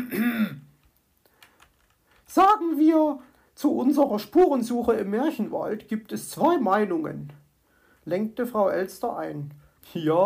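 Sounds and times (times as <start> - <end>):
throat clearing with a rough voiced rasp: 0.0 - 0.7
speech: 2.3 - 7.4, 8.0 - 10.2.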